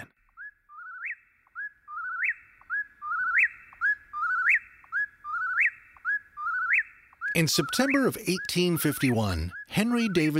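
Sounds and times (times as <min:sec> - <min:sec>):
whippoorwill singing: 0:00.0 - 0:10.3
speech: 0:07.4 - 0:10.3.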